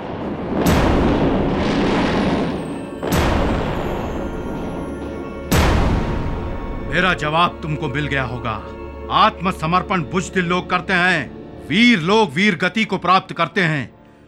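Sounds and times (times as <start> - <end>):
heavy cannon blasts with long rumbling roll: 0.0 - 7.4
speech: 6.9 - 14.0.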